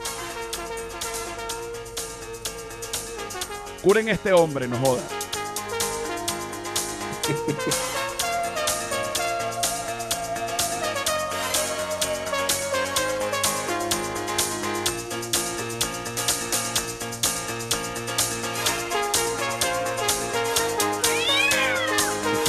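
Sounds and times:
dense continuous music track with steady beats and bright harmonic layers: 0:00.0 - 0:22.4
speech: 0:03.8 - 0:05.2, 0:07.3 - 0:07.9
laughter: 0:07.1 - 0:08.1
cat meowing in a song: 0:20.9 - 0:22.4.

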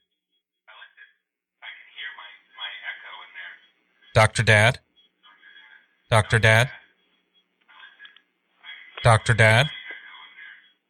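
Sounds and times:
speech: 0:04.2 - 0:04.8, 0:06.1 - 0:06.8, 0:09.0 - 0:09.8
voice through a thin tinny phone line with an echo: 0:04.2 - 0:04.8, 0:06.1 - 0:06.8, 0:08.9 - 0:09.8.

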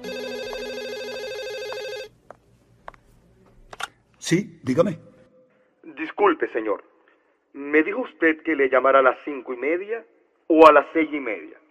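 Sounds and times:
electronic telephone ringing: 0:00.0 - 0:02.1
speech: 0:04.3 - 0:05.1, 0:06.2 - 0:06.9, 0:07.5 - 0:11.6.

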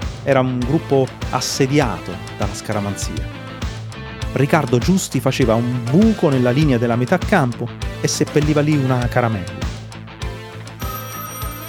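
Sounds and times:
speech: 0:00.2 - 0:03.4, 0:04.4 - 0:09.6
telephone bell ringing with a harsh metallic trill: 0:10.8 - 0:11.6.

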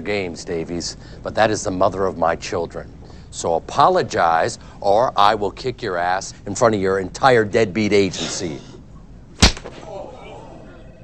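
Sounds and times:
speech: 0:00.0 - 0:08.7
open hand slapping a face: 0:09.4 - 0:09.8.

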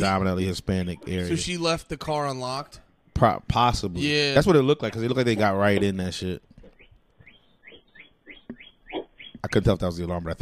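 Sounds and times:
speech: 0:00.0 - 0:06.5, 0:09.4 - 0:10.4
birds chirping in the early morning: 0:00.8 - 0:10.4.

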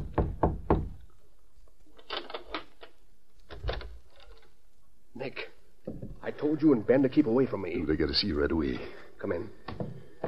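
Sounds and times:
soft knocking on a hotel room door: 0:00.0 - 0:01.0
speech: 0:06.4 - 0:09.6.

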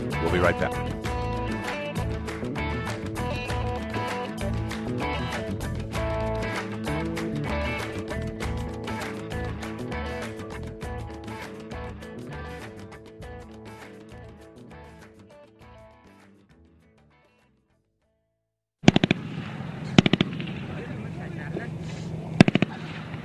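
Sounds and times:
music: 0:00.0 - 0:18.3
speech: 0:00.2 - 0:01.1
gunfire bursts in a firefight: 0:18.8 - 0:21.2, 0:22.4 - 0:23.2
noisy rumbling background: 0:19.1 - 0:23.2.

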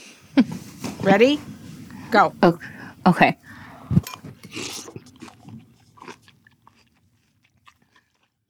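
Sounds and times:
speech: 0:01.0 - 0:01.5, 0:02.1 - 0:04.7
loud wet chewing of a big spoonful of corn: 0:03.6 - 0:08.4.

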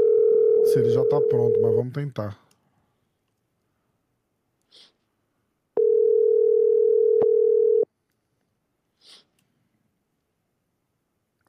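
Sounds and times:
telephone ringing tone while placing a phone call: 0:00.0 - 0:01.8, 0:05.8 - 0:07.9
speech: 0:00.8 - 0:02.4.

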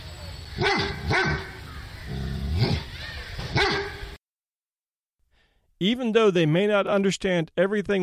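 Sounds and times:
dog barking with a slight whining edge: 0:00.6 - 0:01.6, 0:03.6 - 0:04.0
speech: 0:05.8 - 0:08.0.

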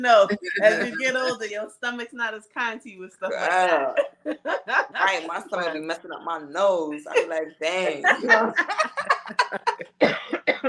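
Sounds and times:
speech: 0:00.0 - 0:09.2, 0:10.0 - 0:10.6
laughter: 0:00.2 - 0:01.4, 0:03.5 - 0:10.6
person coughing: 0:00.3 - 0:01.1, 0:09.8 - 0:10.6.

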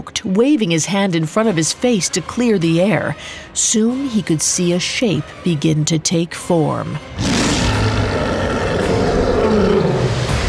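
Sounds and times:
speech: 0:00.0 - 0:07.4
deep powerful animal roar echoing: 0:07.2 - 0:10.4.

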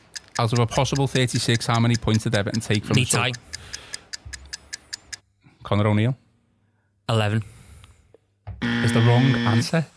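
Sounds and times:
quiz countdown clock ticking: 0:00.0 - 0:05.3
speech: 0:00.4 - 0:03.8, 0:05.7 - 0:06.2, 0:07.1 - 0:07.5, 0:08.9 - 0:09.9.

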